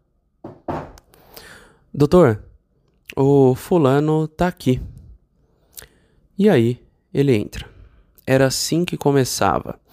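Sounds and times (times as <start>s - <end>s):
knocking on a doctor's office door: 0.4s - 1.0s
speech: 2.0s - 2.5s, 3.2s - 4.9s, 6.4s - 7.7s, 8.3s - 9.9s.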